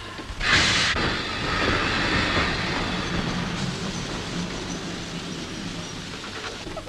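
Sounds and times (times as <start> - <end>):
train braking to a stop on the open line after emergency brake pulled: 0.4 - 6.6.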